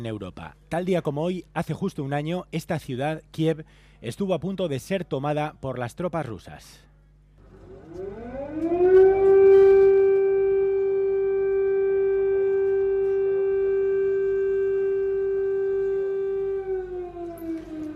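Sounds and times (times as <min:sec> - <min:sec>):
speech: 0:00.0 - 0:06.9
air raid siren wailing: 0:07.4 - 0:17.9.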